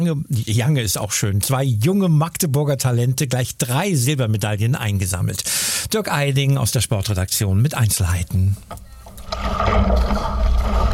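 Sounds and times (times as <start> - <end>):
speech: 0.0 - 10.4
kayak paddle blades pulling through the water on the Elbe river during a training run: 8.8 - 10.9.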